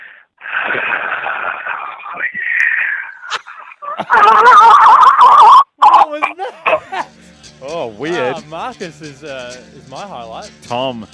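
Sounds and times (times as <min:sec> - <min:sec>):
loud raspy breathing by a radio contest caller over a phone line: 0:00.0 - 0:00.4
laughter: 0:03.2 - 0:07.1
speech: 0:08.5 - 0:11.1.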